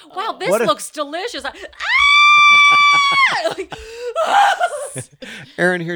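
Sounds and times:
speech: 0:00.0 - 0:02.0, 0:02.7 - 0:05.9
laughter: 0:00.4 - 0:05.9
voice imitating a screaming bat: 0:01.8 - 0:05.1.

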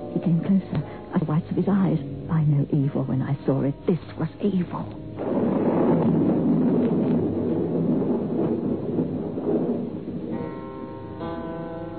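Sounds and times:
speech: 0:00.2 - 0:05.5
deep thunder rumbling: 0:01.2 - 0:11.9
storm wind roaring: 0:05.0 - 0:11.6.

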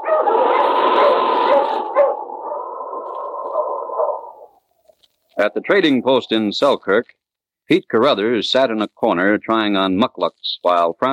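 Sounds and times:
dog barking and baying: 0:00.0 - 0:04.5
speech: 0:05.4 - 0:11.1.

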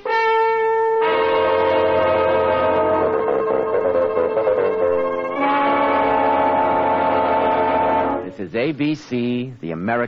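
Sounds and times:
express train horn blaring: 0:00.0 - 0:08.4
express train roaring past: 0:01.0 - 0:08.5
speech: 0:08.6 - 0:10.0.

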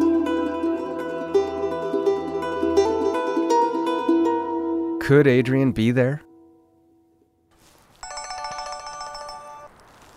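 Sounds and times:
quiet outdoor background: 0:00.0 - 0:10.1
speech: 0:05.1 - 0:06.3
cell phone ringtone with rapid electronic beeping melody: 0:08.0 - 0:09.8.

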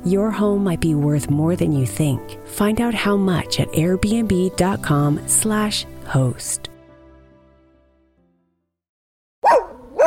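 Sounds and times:
speech: 0:00.0 - 0:06.7
dog barking: 0:09.4 - 0:10.0.

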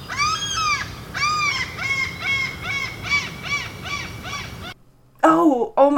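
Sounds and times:
birds cawing harshly: 0:00.0 - 0:04.8
low rumbling background: 0:00.0 - 0:05.1.

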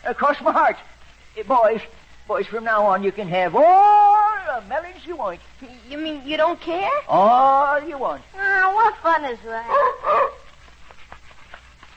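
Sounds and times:
speech: 0:00.1 - 0:10.4
dog barking: 0:09.7 - 0:10.5.

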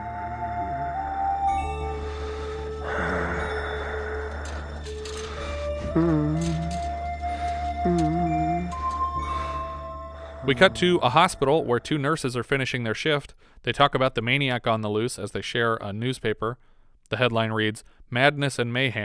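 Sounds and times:
droning eerie synth score with wavering tones: 0:00.0 - 0:11.8
slow heavy rasping breathing: 0:01.9 - 0:11.1
speech: 0:06.0 - 0:06.8, 0:07.8 - 0:08.2, 0:10.5 - 0:19.0.

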